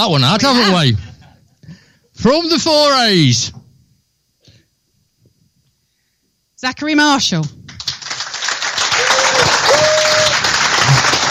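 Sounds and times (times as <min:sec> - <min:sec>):
speech: 0:00.0 - 0:01.1, 0:02.2 - 0:03.6, 0:06.6 - 0:07.6
crowd applauding a paddler receiving a trophy: 0:07.8 - 0:11.3
faint whistle or cheer: 0:08.9 - 0:10.4.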